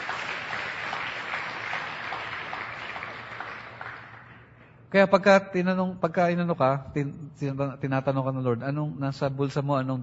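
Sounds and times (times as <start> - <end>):
church congregation applauding during a worship service: 0.0 - 4.6
speech: 4.9 - 10.0.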